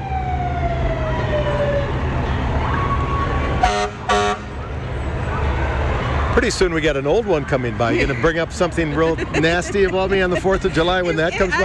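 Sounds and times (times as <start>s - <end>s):
volunteer fire department engine siren winding down in a parade: 0.0s - 4.7s
fire engine rumble: 0.0s - 11.6s
fire engine horn blasts: 3.6s - 4.6s
speech: 6.4s - 11.6s
laughter: 7.8s - 11.6s.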